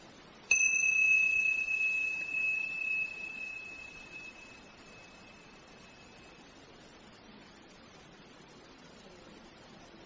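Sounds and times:
meditation bell ringing: 0:00.5 - 0:06.8.

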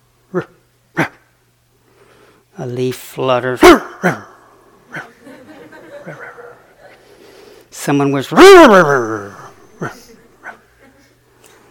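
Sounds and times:
quiet hum: 0:00.0 - 0:11.6
speech: 0:00.3 - 0:00.6, 0:02.6 - 0:04.3, 0:07.9 - 0:10.0
human voice imitating dog barks: 0:00.3 - 0:01.3, 0:03.6 - 0:05.2, 0:08.4 - 0:10.6
laughter: 0:04.9 - 0:07.2, 0:09.7 - 0:11.2.

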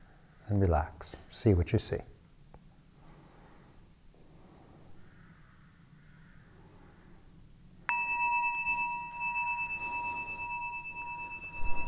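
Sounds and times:
speech: 0:00.5 - 0:02.1
meditation bell ringing: 0:07.8 - 0:11.8.

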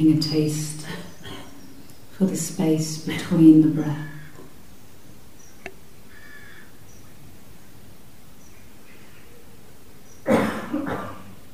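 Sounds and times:
speech: 0:00.0 - 0:01.0, 0:02.2 - 0:04.1
person coughing: 0:10.3 - 0:11.3.

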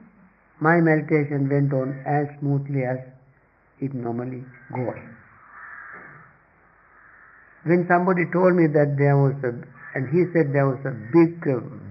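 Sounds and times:
speech: 0:00.6 - 0:03.2, 0:03.8 - 0:05.2, 0:07.6 - 0:11.8
crow cawing: 0:04.5 - 0:07.7, 0:09.6 - 0:11.2.

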